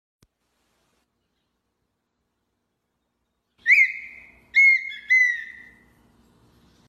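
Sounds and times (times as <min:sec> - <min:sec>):
bird call: 0:03.6 - 0:05.9.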